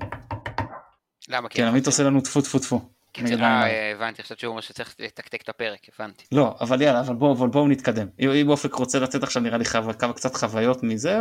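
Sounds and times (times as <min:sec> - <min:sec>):
quick knocks on a wooden surface: 0:00.0 - 0:00.8
speech: 0:01.2 - 0:11.2.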